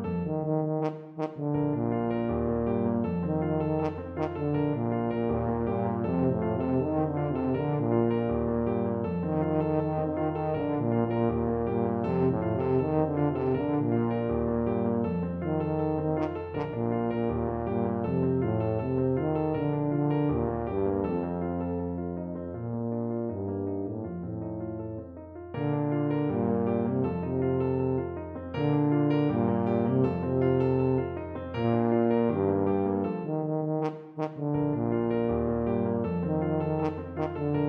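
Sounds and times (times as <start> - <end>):
tuba playing a Mexican folk song: 0.2 - 37.6.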